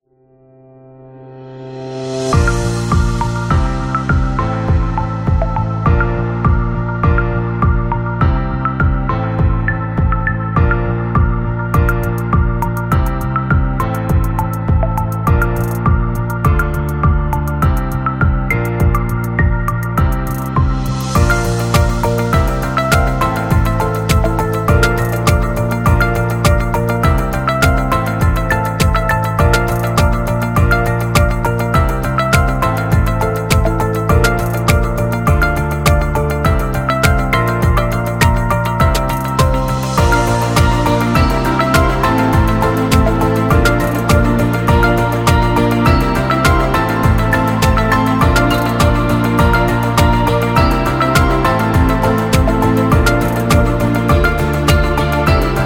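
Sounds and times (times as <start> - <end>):
corporate ambient music: 0.3 - 55.6.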